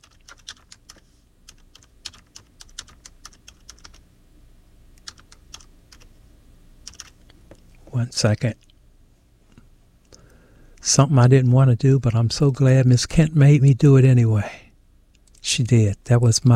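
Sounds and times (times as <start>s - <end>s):
typing on a computer keyboard: 0.0s - 4.0s, 5.0s - 6.1s, 6.8s - 7.2s
speech: 8.0s - 8.6s, 11.0s - 14.6s, 15.6s - 16.5s.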